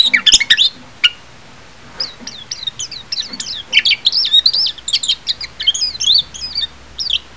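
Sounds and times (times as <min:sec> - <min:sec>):
Japanese white-eye twittering calls: 0:00.0 - 0:01.2, 0:02.0 - 0:07.3.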